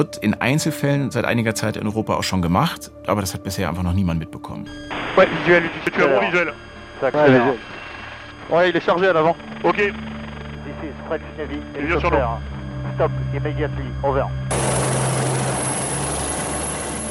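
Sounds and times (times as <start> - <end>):
speech: 0.0 - 7.8, 8.5 - 10.1, 10.7 - 14.6
helicopter rotor and engine roar: 6.0 - 17.0.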